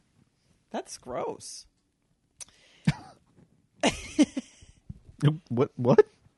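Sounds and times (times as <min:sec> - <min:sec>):
speech: 0:00.7 - 0:01.7, 0:05.2 - 0:06.2
person coughing: 0:02.9 - 0:03.2.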